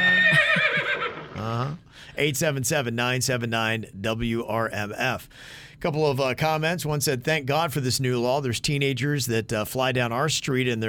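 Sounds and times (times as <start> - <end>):
little horse whinnying: 0.0 - 1.9
speech: 1.6 - 10.8.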